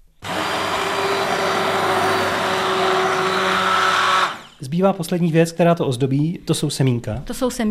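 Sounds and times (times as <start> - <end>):
immersion blender puréeing soup: 0.2 - 4.6
speech: 4.8 - 7.7.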